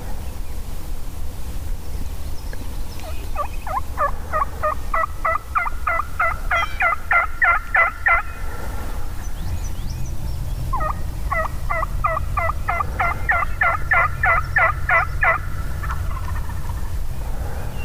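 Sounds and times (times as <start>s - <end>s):
steady loud low rumble of road traffic: 0.0s - 17.8s
wild turkey gobbling far away during a turkey hunt: 3.0s - 8.9s, 10.7s - 17.0s.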